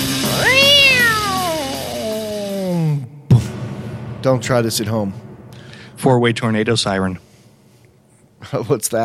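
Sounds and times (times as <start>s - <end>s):
cat yowling as it is swung around by the tail: 0.2s - 2.2s
speech: 4.2s - 5.3s, 6.0s - 7.2s, 8.4s - 9.0s.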